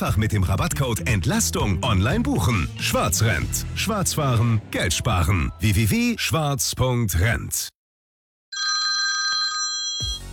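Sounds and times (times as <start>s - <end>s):
speech: 0.0s - 7.8s
telephone ringing in a bright trilling electronic burst: 8.5s - 10.3s.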